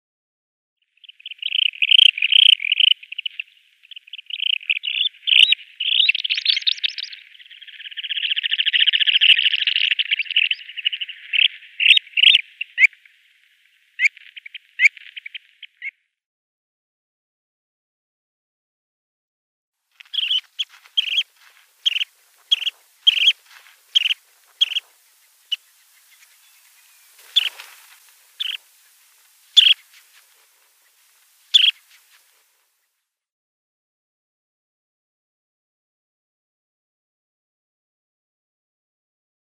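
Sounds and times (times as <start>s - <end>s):
Curlew Sandpiper calls: 1.0s - 15.9s, 20.0s - 32.9s.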